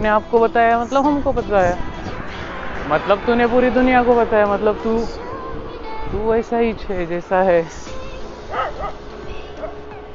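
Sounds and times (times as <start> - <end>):
speech: 0.0 - 1.9, 2.9 - 5.3, 6.1 - 8.0
dog giving short high yipping barks: 8.5 - 9.0.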